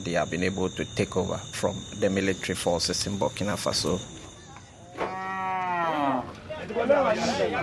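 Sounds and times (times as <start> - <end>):
speech: 0.0 - 4.2, 6.8 - 7.6
busy noisy outdoor crowd at a cattle market: 0.0 - 7.6
cattle bellowing at a cattle market: 5.0 - 6.4
cow mooing at a cattle market: 5.0 - 6.4.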